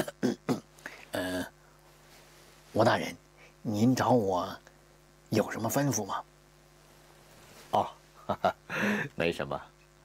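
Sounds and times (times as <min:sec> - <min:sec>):
man clearing his throat: 0:00.0 - 0:01.5
speech: 0:02.8 - 0:04.7, 0:05.3 - 0:06.3, 0:07.7 - 0:09.7.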